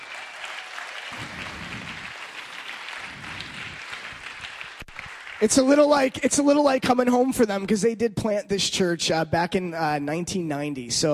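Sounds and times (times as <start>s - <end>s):
room full of people applauding: 0.0s - 5.9s
speech: 5.4s - 11.1s.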